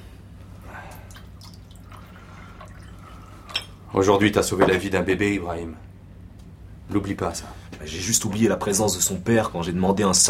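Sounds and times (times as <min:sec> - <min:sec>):
low steady hum: 0:00.0 - 0:10.2
tea poured from a pot into a cup: 0:01.0 - 0:03.2
speech: 0:03.9 - 0:05.9, 0:06.9 - 0:10.2.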